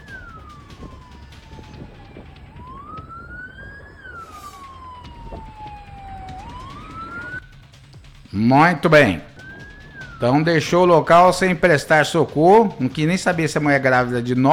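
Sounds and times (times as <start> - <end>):
police siren wailing: 0.0 - 7.8, 8.4 - 14.5
traffic rumble: 0.0 - 14.5
speech: 8.4 - 9.3, 10.2 - 14.5.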